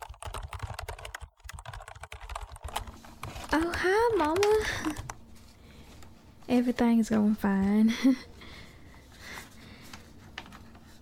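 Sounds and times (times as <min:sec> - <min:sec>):
rapid typing on a computer keyboard: 0:00.0 - 0:05.2
speech: 0:03.5 - 0:05.1, 0:06.5 - 0:08.3.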